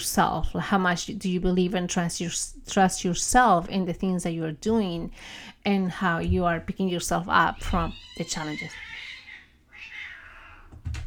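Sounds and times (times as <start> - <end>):
speech: 0.0 - 8.9
cat meowing outside window: 7.6 - 10.8
low thump: 10.7 - 11.0.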